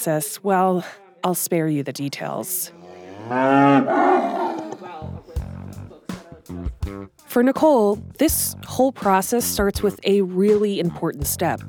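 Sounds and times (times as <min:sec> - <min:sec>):
speech: 0:00.0 - 0:05.1, 0:06.9 - 0:11.6
cow mooing: 0:02.7 - 0:05.0.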